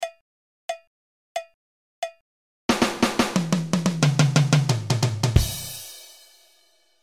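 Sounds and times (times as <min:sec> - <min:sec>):
drum roll in four time: 0:02.7 - 0:06.6.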